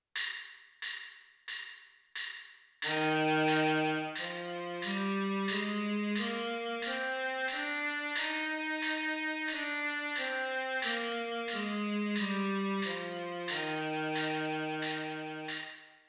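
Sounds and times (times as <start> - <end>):
baritone saxophone playing a C major scale in the upper octave: 2.9 - 15.6.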